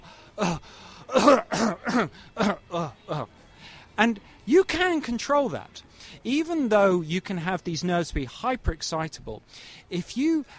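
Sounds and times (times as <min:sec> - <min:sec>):
person demonstrating a scratchy lower airway chest cough: 0:00.4 - 0:03.3
speech: 0:04.9 - 0:10.5.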